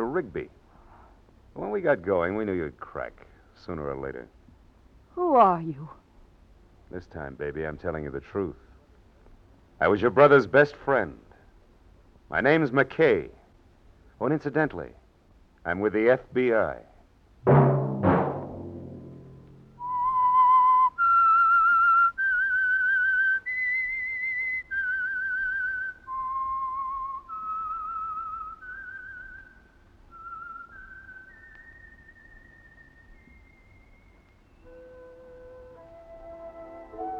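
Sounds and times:
speech: 0.2 - 0.6, 1.6 - 4.4, 5.2 - 6.0, 6.9 - 8.6, 9.8 - 11.2, 12.3 - 13.4, 14.2 - 15.0, 15.6 - 17.7
percussive chords: 17.5 - 19.8
whistled melody: 19.7 - 37.1.

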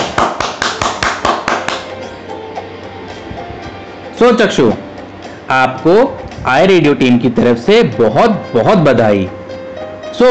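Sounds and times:
sharp evenly spaced hand claps: 0.0 - 2.2
speech: 4.2 - 4.9, 5.5 - 9.4.

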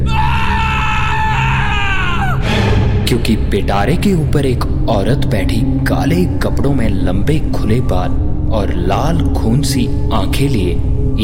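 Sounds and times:
man screaming in fright: 0.0 - 2.5
low rumble: 2.4 - 11.2
speech: 3.1 - 11.2.

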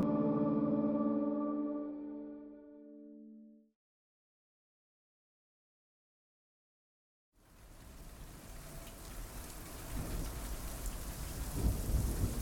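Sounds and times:
low sustained musical drone: 0.0 - 3.6
heavy rain: 7.4 - 12.4
deep rolling thunder: 9.9 - 12.4.

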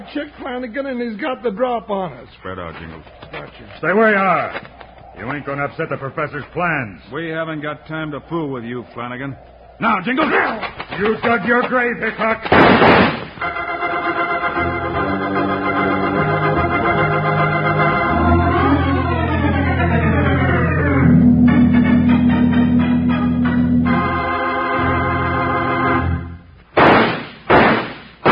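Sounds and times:
speech: 0.0 - 13.6
quick loud sharp gunshots: 12.4 - 13.6, 26.8 - 28.2
sustained swelling musical passage: 13.4 - 26.5.

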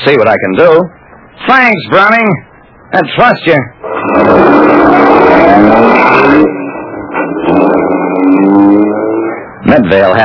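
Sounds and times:
speech: 0.0 - 6.6, 9.6 - 10.2
car engine driving: 2.4 - 10.2.

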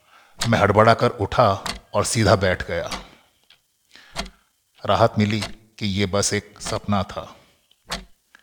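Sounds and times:
speech: 0.5 - 3.0, 4.8 - 7.4
alarm clock ticking: 2.9 - 3.1, 5.3 - 5.6.

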